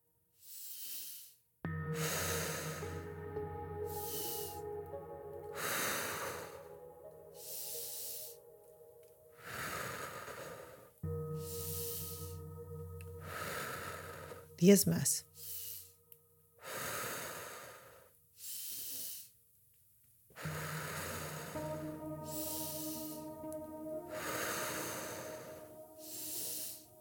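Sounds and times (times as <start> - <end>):
slow breathing, inhaling and exhaling without pause: 0.4 - 14.6, 15.3 - 16.0, 16.6 - 19.4, 20.4 - 27.0
low sustained tonal background: 1.7 - 16.5, 20.4 - 27.0
speech: 14.6 - 15.3.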